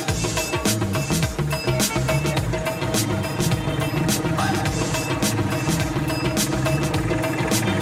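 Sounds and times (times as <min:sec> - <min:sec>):
motorcycle engine running on a ride in the Indian countryside: 0:00.1 - 0:07.8.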